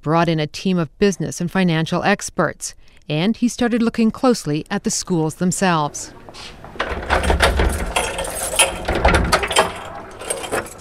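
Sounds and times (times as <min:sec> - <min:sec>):
speech: 0:00.0 - 0:07.3
heavy door thudding and creaking open: 0:06.0 - 0:10.7
brass key rattling and turning in a lock: 0:06.8 - 0:10.7.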